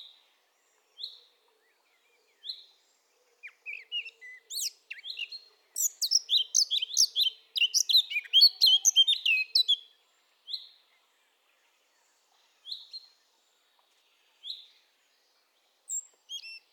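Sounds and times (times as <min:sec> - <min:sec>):
Sylvia atricapilla Eurasian blackcap rich warbling song: 0:03.4 - 0:09.9, 0:15.9 - 0:16.7.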